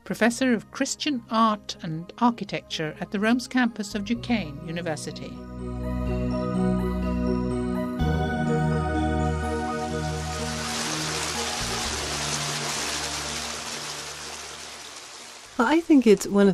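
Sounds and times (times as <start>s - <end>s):
speech: 0.1s - 5.7s, 15.6s - 16.5s
sustained low musical tones: 4.0s - 15.2s
water splashing in a fountain: 10.0s - 16.3s.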